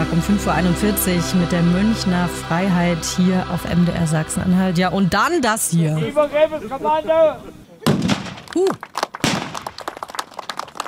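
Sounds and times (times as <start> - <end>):
speech: 0.0 - 7.6, 8.6 - 9.0
outdoor crowd noise: 0.0 - 10.8
cannon salute blasts: 7.8 - 8.5.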